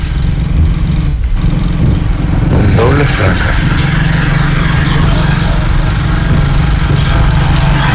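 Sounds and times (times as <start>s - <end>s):
motorcycle overtaking on a road, engine revving and droning past: 0.0s - 7.9s
steady road and engine noise: 0.0s - 7.9s
man speaking: 2.5s - 3.7s.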